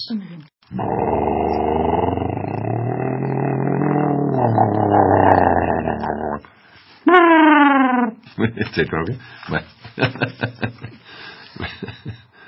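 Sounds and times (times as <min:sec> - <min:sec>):
speech: 0:00.0 - 0:01.1, 0:08.7 - 0:10.7
voice imitating a Spanish bus engine drone: 0:00.7 - 0:06.5, 0:07.1 - 0:08.2.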